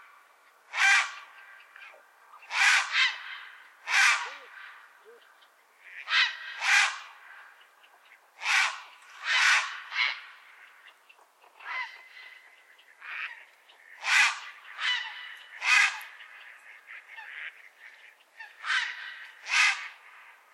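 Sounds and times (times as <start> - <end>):
grey heron calling: 0.8 - 20.1.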